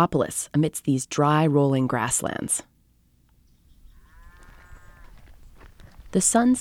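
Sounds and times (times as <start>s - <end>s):
speech: 0.0s - 2.7s, 6.1s - 6.5s
sheep bleating on a ranch: 4.0s - 5.2s.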